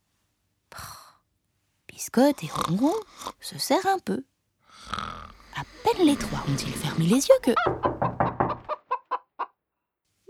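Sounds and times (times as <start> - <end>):
speech: 2.0 - 5.0, 5.6 - 7.9
hen clucking: 5.3 - 9.2.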